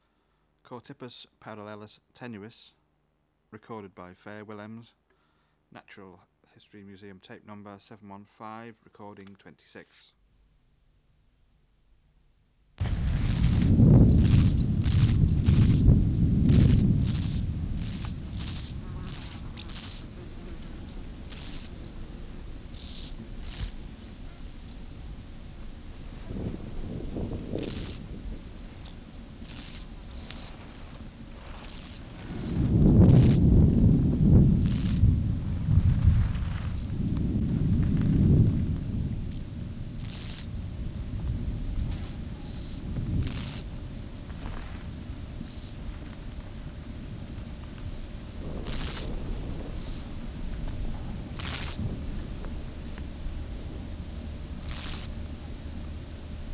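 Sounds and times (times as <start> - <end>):
Chorthippus parallelus tenuis chirping: 12.8 - 56.5.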